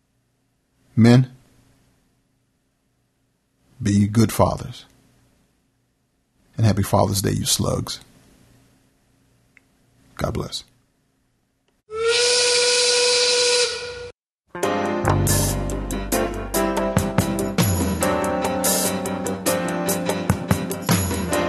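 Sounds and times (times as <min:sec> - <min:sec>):
speech: 0:01.0 - 0:01.4, 0:03.8 - 0:04.9, 0:06.6 - 0:08.1, 0:10.2 - 0:10.7
steam whistle blowing: 0:11.9 - 0:14.1
music-like tones: 0:14.6 - 0:21.4.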